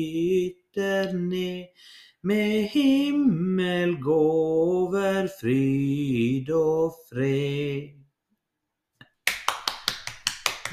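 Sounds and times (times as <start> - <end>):
speech: 0.0 - 8.0
hand clapping after a sung Christmas hymn: 9.0 - 10.7.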